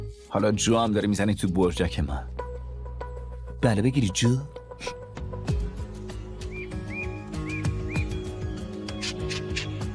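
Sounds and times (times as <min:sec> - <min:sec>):
speech: 0:00.3 - 0:02.4, 0:03.6 - 0:05.0
bird giving short rising chirps: 0:06.3 - 0:09.9.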